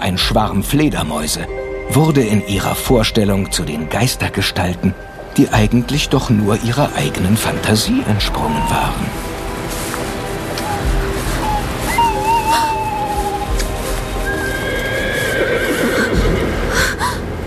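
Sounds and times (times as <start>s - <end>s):
speech: 0.1s - 9.3s
outdoor noise: 2.6s - 17.4s
horse whinnying in the distance: 14.3s - 16.4s.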